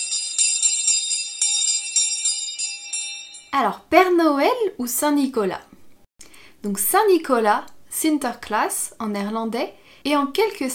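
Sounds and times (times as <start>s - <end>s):
small bright jingling bells shaking: 0.0s - 3.6s
speech: 3.5s - 5.8s, 6.6s - 10.7s.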